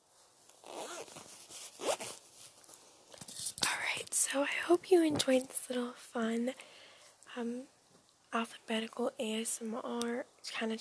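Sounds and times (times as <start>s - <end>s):
zipper being pulled: 0.5s - 2.3s
speech: 4.3s - 6.7s, 7.4s - 10.7s.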